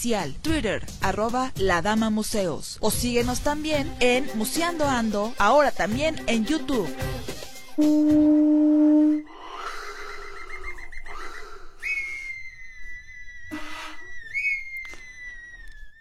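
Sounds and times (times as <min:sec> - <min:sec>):
speech: 0:00.0 - 0:09.3
bright sliding whistle-like flute notes: 0:07.8 - 0:09.3, 0:12.0 - 0:15.9
loud steady low horn-like tone: 0:07.8 - 0:09.3.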